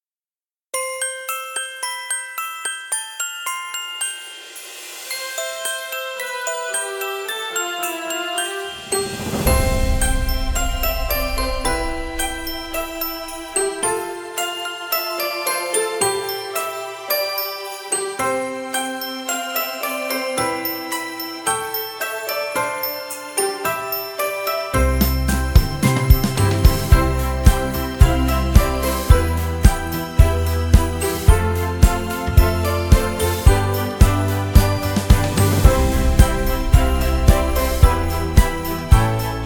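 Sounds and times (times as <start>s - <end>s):
Christmas background music: 0.8s - 39.4s.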